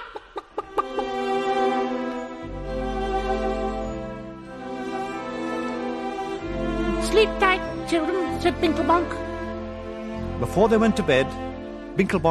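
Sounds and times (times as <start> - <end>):
long drawn-out chicken squawk: 0.0 - 1.1
chicken clucking: 0.0 - 1.3
steady low musical backing: 0.7 - 12.2
speech: 7.2 - 9.2, 10.4 - 12.2.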